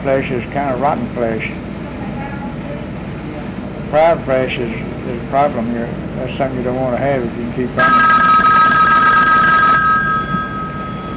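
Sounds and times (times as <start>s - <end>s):
speech: 0.0s - 1.7s, 3.9s - 8.3s
telephone ringing with an electronic trill: 7.8s - 11.1s.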